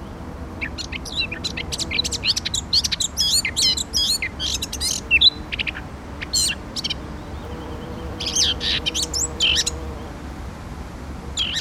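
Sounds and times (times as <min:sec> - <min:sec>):
Eurasian blackcap Sylvia atricapilla warbling song: 0:00.0 - 0:09.8
low background noise: 0:00.0 - 0:11.5.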